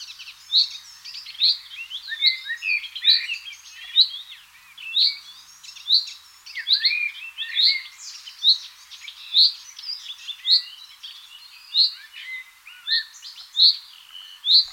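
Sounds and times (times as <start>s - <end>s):
busy overlapping bird twitters and chirps: 0.0s - 14.7s
common chaffinch (Fringilla coelebs) repeating clipped high calls: 0.0s - 14.7s.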